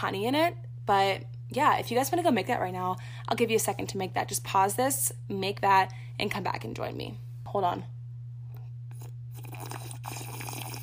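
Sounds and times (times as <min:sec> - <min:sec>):
speech: 0:00.0 - 0:08.0
steady low electrical hum: 0:00.0 - 0:10.8
person sipping and swallowing an apple cider vinegar tonic: 0:08.6 - 0:10.8.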